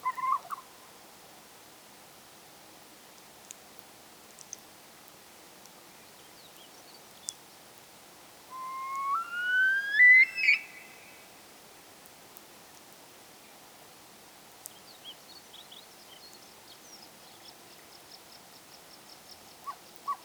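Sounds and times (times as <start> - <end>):
faint hiss: 0.0 - 20.2
Himalayan snowcock Tetraogallus himalayensis whistling: 8.5 - 11.2.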